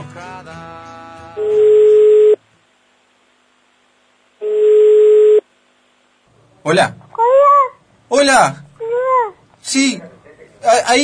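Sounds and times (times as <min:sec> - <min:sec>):
speech: 0:00.2 - 0:00.7, 0:06.6 - 0:07.0, 0:08.1 - 0:08.6, 0:09.7 - 0:11.0
ringback tones of an outgoing telephone call: 0:01.4 - 0:02.4, 0:04.4 - 0:05.4.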